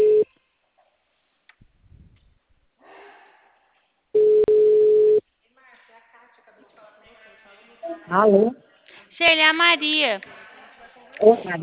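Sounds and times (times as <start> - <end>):
telephone ringing tone while placing a call: 0.0 - 0.2, 4.2 - 5.2
speech: 8.1 - 8.6, 9.2 - 10.4, 11.2 - 11.6.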